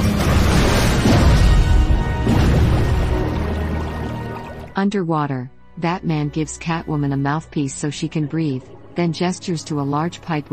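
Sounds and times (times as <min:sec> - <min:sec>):
top floor of a burning building crashing apart: 0:00.0 - 0:03.1
speech: 0:04.8 - 0:10.5.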